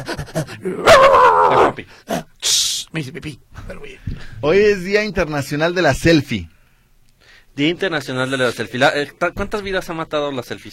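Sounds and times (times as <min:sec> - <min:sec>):
speech: 0:00.0 - 0:06.5, 0:07.6 - 0:10.7
person imitating a dog barking, whining and yelping: 0:00.6 - 0:02.3.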